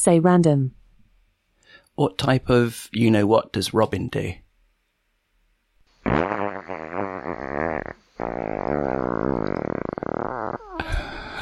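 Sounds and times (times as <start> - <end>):
speech: 0.0 - 0.8, 2.0 - 4.4
long squeaky fart sound effect: 6.0 - 10.8.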